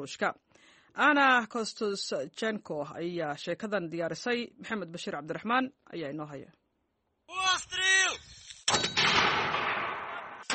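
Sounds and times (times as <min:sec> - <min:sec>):
speech: 0:00.0 - 0:06.6
M-224 mortar firing: 0:08.7 - 0:10.5.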